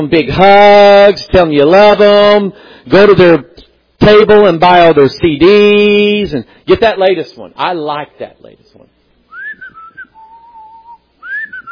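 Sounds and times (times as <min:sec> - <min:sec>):
speech: 0:00.0 - 0:08.9
whistling carrying the melody of a song: 0:09.3 - 0:11.7.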